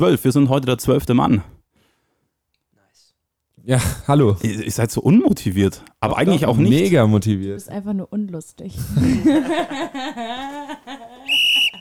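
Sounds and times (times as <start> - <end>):
speech: 0.0 - 1.6, 3.6 - 11.7
laughter: 8.9 - 11.7
referee whistle blast for kickoff: 11.3 - 11.7.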